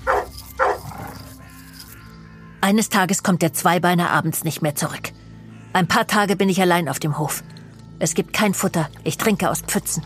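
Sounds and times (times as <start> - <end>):
chained dog barking aggressively: 0.0 - 1.2
speech: 2.6 - 10.0.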